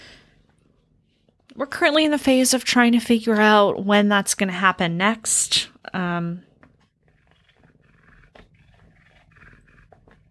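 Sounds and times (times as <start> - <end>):
speech: 1.6 - 6.5
small dog growling while attacking a notebook: 7.1 - 10.2.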